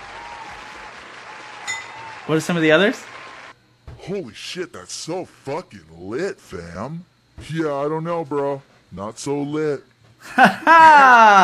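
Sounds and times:
crowd applauding: 0:00.0 - 0:03.6
speech: 0:02.3 - 0:03.1, 0:04.0 - 0:11.4
laughter: 0:10.2 - 0:11.4.

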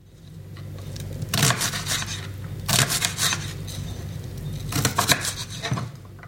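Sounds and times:
knife chopping onions and other vegetables: 0:01.3 - 0:03.6, 0:04.7 - 0:06.0.

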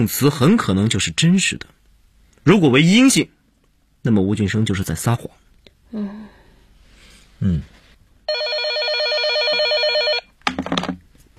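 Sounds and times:
speech: 0:00.0 - 0:01.8, 0:02.4 - 0:03.4, 0:04.0 - 0:06.3, 0:07.4 - 0:08.4
telephone bell ringing: 0:08.3 - 0:10.3.

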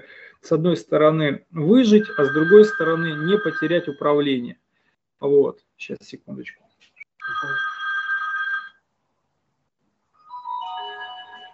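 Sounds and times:
speech: 0:00.4 - 0:04.6, 0:05.2 - 0:06.6
telephone ringing with an electronic tonal ringtone: 0:01.7 - 0:04.1, 0:07.2 - 0:08.8, 0:10.3 - 0:11.5.

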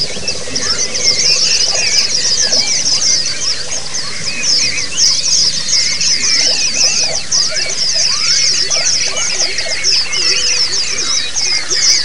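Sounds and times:
white-eye singing: 0:00.0 - 0:12.0.

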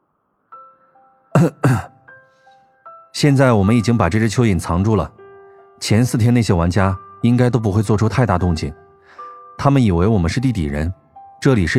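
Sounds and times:
speech: 0:01.4 - 0:01.9, 0:03.2 - 0:05.2, 0:05.8 - 0:08.8, 0:09.6 - 0:11.7
man coughing: 0:01.4 - 0:02.0.

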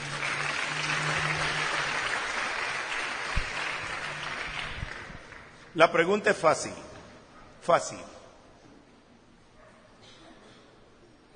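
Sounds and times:
low tonal hum: 0:00.0 - 0:05.3
live audience applause during a game show: 0:00.0 - 0:05.7
speech: 0:05.8 - 0:06.9, 0:07.6 - 0:08.2.

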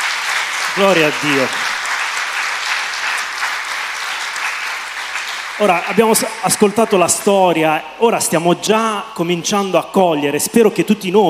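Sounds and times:
church congregation applauding: 0:00.0 - 0:07.3
speech: 0:00.8 - 0:01.7, 0:05.6 - 0:11.2.

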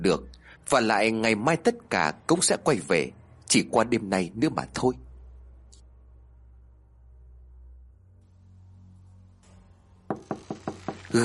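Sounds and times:
speech: 0:00.0 - 0:05.0
sharp knocks on a room door: 0:10.1 - 0:11.1.

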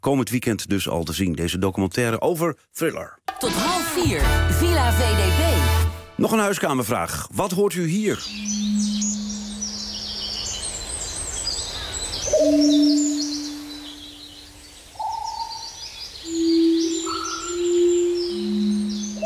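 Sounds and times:
speech: 0:00.0 - 0:08.7, 0:12.4 - 0:13.0
birds calling and chirping in the Wadden Sea area: 0:07.9 - 0:19.2
woodpecker: 0:08.2 - 0:19.2.

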